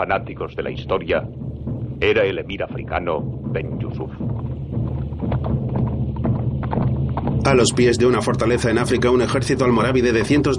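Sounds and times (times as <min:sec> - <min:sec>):
speech: 0:00.0 - 0:01.4, 0:02.0 - 0:04.3, 0:07.4 - 0:10.5
horse hooves clip-clopping at a walk in a square below a fortress in Africa: 0:04.2 - 0:09.2.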